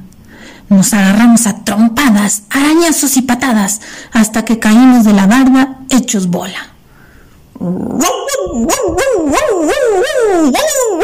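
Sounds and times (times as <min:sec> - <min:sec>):
speech: 0:00.7 - 0:06.7, 0:07.6 - 0:11.0
dog barking frantically with high-pitched yelping barks: 0:08.0 - 0:11.0.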